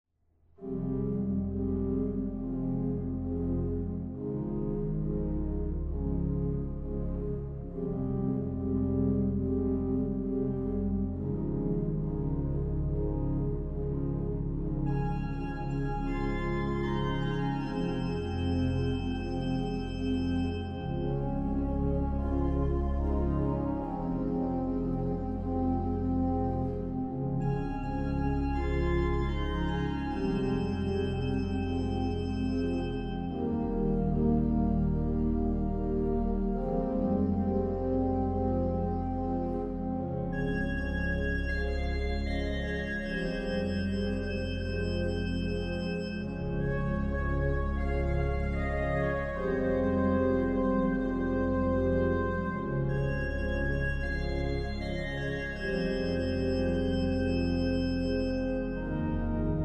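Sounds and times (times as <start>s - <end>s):
organ playing a Credo: 0.6s - 59.6s.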